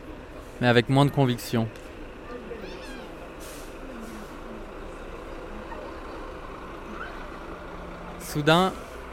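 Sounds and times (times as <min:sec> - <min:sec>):
gigantic truck loaded with stacked sacks rumbling and stopping: 0:00.0 - 0:09.1
speech: 0:00.6 - 0:01.8, 0:08.4 - 0:08.8
truck air brakes hissing: 0:03.2 - 0:04.5, 0:08.7 - 0:09.1.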